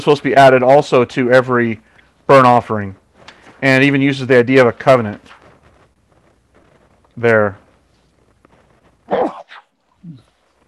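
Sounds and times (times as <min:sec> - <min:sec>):
speech: 0:00.0 - 0:03.0, 0:03.6 - 0:05.4, 0:07.2 - 0:07.6, 0:09.1 - 0:09.4
person sneezing: 0:09.1 - 0:10.3.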